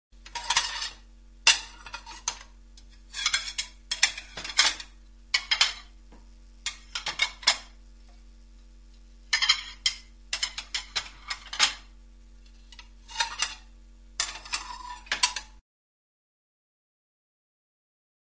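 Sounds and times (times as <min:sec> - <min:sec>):
faint steady hum: 0:00.2 - 0:15.6
plates clinking and clattering: 0:00.3 - 0:02.5, 0:03.1 - 0:05.9, 0:06.6 - 0:07.7, 0:09.3 - 0:11.9, 0:12.7 - 0:15.5.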